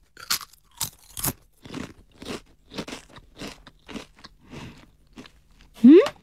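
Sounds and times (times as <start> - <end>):
crunchy snack flavored with bonito and kelp being bitten and chewed: 0.0 - 5.8
brief voiced sound: 5.8 - 6.2.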